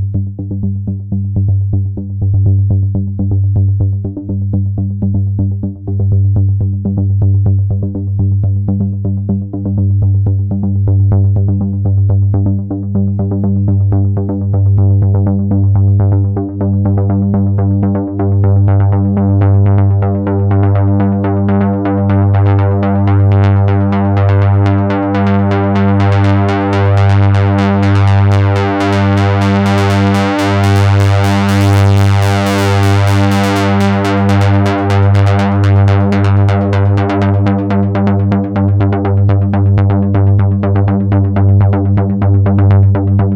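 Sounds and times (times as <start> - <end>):
mini filter sweep: 0.1 - 43.3.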